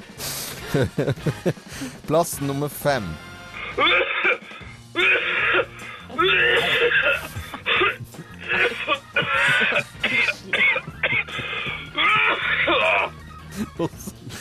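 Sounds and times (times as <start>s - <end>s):
laughter: 0.6s - 1.6s, 6.1s - 14.4s
speech: 0.7s - 4.0s, 13.8s - 14.0s
heavy coughing: 3.6s - 14.4s
throat clearing: 3.7s - 13.1s.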